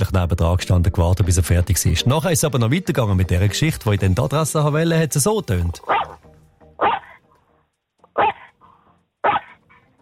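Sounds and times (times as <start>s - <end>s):
speech: 0.1s - 6.1s
dog barking: 5.8s - 6.2s, 6.8s - 7.2s, 8.0s - 8.6s, 9.2s - 9.9s.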